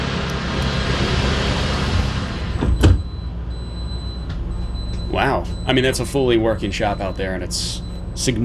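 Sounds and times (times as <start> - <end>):
low vehicle rumble on a manufacturing plant floor: 0.0 - 8.4
large sliding glass door of an electric delivery vehicle closing: 0.5 - 3.2
speech: 5.7 - 8.4.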